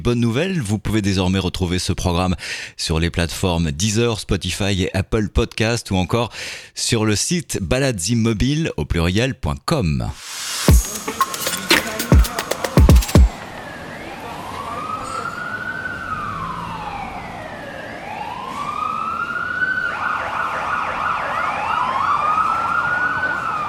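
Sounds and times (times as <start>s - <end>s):
speech: 0.0s - 10.5s
wailing sirens of emergency vehicles: 10.8s - 23.6s
city street traffic rumble in Melbourne: 13.3s - 21.0s.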